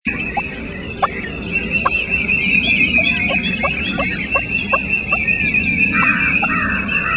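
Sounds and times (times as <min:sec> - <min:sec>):
turkey tree call: 0:00.1 - 0:07.1.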